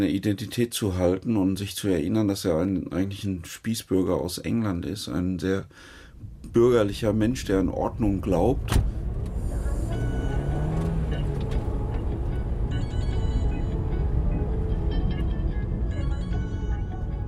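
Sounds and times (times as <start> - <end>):
speech: 0.0 - 8.9
Dacia Logan taxi engine and tyre rumble heard from inside: 6.1 - 17.2.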